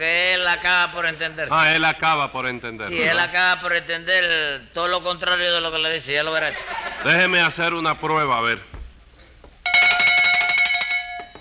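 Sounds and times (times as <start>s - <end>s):
speech: 0.0s - 8.7s
laughter: 6.3s - 7.5s
small hand bell ringing: 9.6s - 11.3s.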